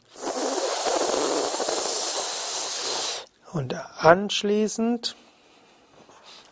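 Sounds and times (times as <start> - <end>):
hissing inhalation through teeth in yogic breathing: 0.0 - 3.3
speech: 3.5 - 5.2.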